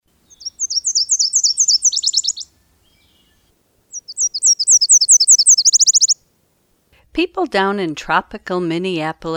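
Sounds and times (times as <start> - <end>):
Nashville Warbler song: 0.0 - 6.3
speech: 7.2 - 9.3.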